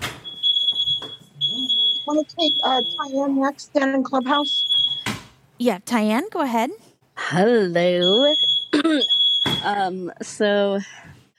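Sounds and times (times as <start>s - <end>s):
smoke alarm beeping with a high piercing electronic tone: 0.0s - 5.2s, 7.9s - 9.9s
speech: 2.1s - 4.7s, 5.6s - 11.1s.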